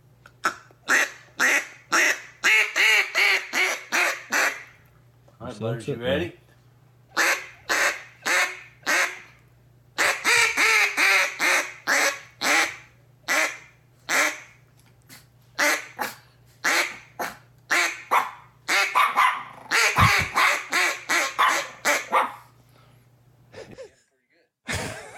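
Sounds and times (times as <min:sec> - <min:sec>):
duck call blown in loud raspy quacks: 0:00.4 - 0:04.8, 0:07.2 - 0:09.3, 0:10.0 - 0:14.6, 0:15.6 - 0:22.4
speech: 0:05.6 - 0:06.4
dog barking in loud yelps: 0:18.0 - 0:22.5
laughter: 0:24.7 - 0:25.1.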